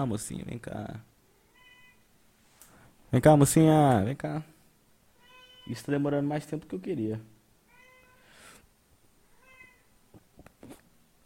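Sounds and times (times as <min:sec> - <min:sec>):
speech: 0:00.0 - 0:01.1, 0:03.1 - 0:04.5, 0:05.6 - 0:07.3
female pet cat meowing: 0:01.5 - 0:02.1, 0:05.2 - 0:05.8, 0:07.7 - 0:08.3, 0:09.3 - 0:09.9.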